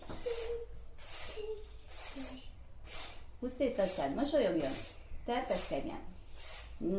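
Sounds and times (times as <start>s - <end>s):
child making breathy hissing sounds to call a cat: 0.2s - 3.3s, 5.5s - 6.8s
speech: 3.4s - 6.2s, 6.8s - 6.9s.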